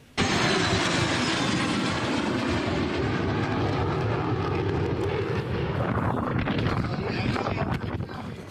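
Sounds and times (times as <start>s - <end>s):
F-16 fighter jets flying overhead on an escort flight in Thailand: 0.0s - 8.4s
wind buffeting on the microphone: 4.5s - 8.4s.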